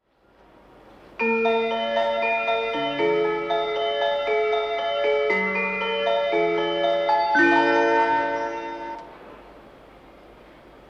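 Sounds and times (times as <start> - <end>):
train station melody: 1.2 - 9.2.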